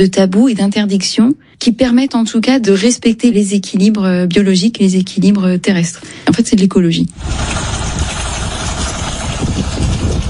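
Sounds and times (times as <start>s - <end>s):
speech: 0.0s - 8.1s
boat engine idling: 7.2s - 10.2s.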